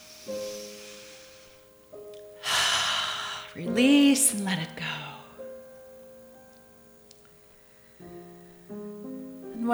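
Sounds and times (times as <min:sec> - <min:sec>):
deep breath in during guided meditation: 0:00.0 - 0:01.8, 0:02.4 - 0:03.6
speech: 0:03.6 - 0:05.0.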